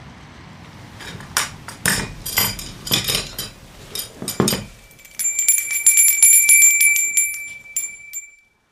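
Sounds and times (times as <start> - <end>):
wind chime jangling when rung by pulling its cord: 1.0 - 8.5.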